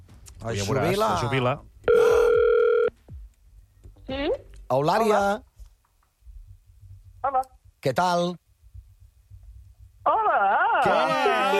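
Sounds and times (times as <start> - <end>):
faint low noise: 0.0 - 11.5
speech: 0.4 - 2.0, 4.1 - 5.5, 7.2 - 8.4, 10.1 - 11.5
telephone ringback tone after dialling a number: 1.9 - 2.9.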